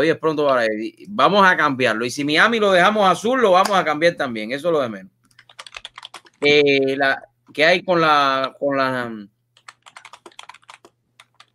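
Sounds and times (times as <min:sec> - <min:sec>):
speech: 0:00.0 - 0:05.2, 0:06.4 - 0:09.3
typing on a computer keyboard: 0:05.3 - 0:06.4, 0:09.6 - 0:11.5.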